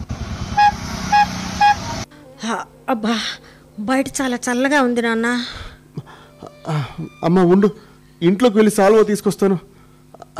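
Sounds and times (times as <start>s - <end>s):
arriving auto-rickshaw engine hum: 0.0s - 4.8s
auto-rickshaw horn toots: 0.5s - 2.1s
speech: 2.4s - 5.6s, 6.6s - 9.7s.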